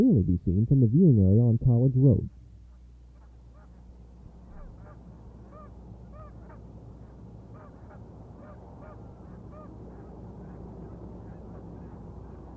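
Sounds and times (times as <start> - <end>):
speech: 0.0 - 2.4
heavy noontime traffic on a busy four-lane street: 0.0 - 12.5
flock of Canada geese honking on a pond: 2.7 - 12.5.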